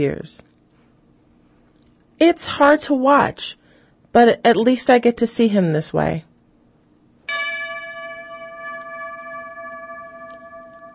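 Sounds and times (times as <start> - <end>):
speech: 0.0 - 0.5, 2.2 - 6.3
memorial bell struck to mark bomb blasts on trains: 7.3 - 10.9.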